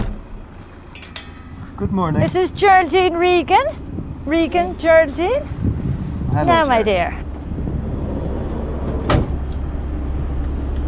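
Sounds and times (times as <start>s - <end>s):
bus engine idling on its route into Skibbereen: 0.0s - 10.8s
speech: 1.8s - 5.6s, 6.3s - 7.2s.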